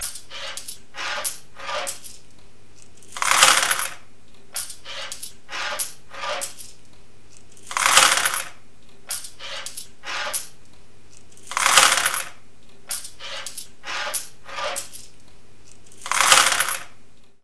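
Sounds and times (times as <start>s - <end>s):
coins: 0.0s - 4.0s, 4.6s - 10.6s, 11.2s - 17.0s.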